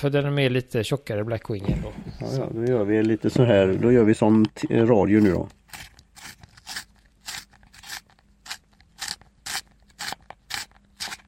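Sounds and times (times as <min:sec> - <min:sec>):
speech: 0:00.0 - 0:05.9
pencil being sharpened in a hand sharpener: 0:05.1 - 0:11.2.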